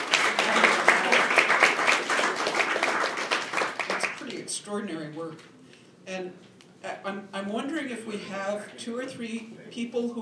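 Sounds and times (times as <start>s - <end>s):
audience applause: 0.0s - 4.3s
speech: 4.7s - 10.2s.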